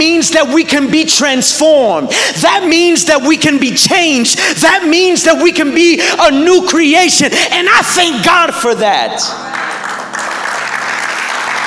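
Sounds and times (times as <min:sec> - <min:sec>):
speech: 0:00.0 - 0:09.6
light polite applause from a small crowd: 0:09.4 - 0:11.6.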